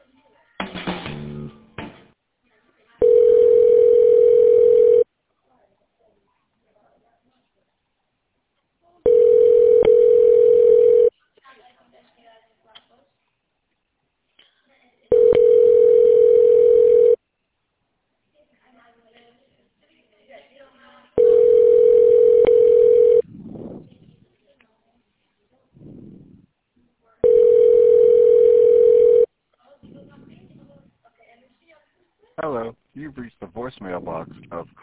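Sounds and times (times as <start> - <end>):
telephone ringback tone during call transfer: 3.0 - 5.1, 9.0 - 11.1, 15.1 - 17.2, 21.2 - 23.2, 27.2 - 29.3.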